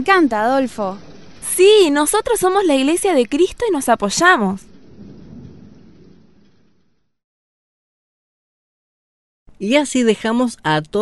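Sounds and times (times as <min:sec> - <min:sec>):
speech: 0:00.0 - 0:04.7, 0:09.6 - 0:11.0
low rumble of thunder: 0:00.0 - 0:07.2.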